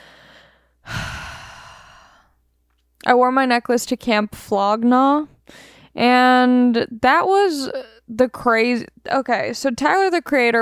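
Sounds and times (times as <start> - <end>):
deep breath: 0.0 - 2.4, 5.5 - 5.9
speech: 3.0 - 10.6.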